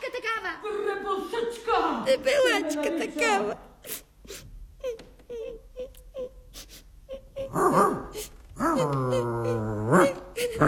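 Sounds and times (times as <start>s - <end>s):
speech: 0.2s - 3.7s
person sobbing and wailing: 4.8s - 10.6s.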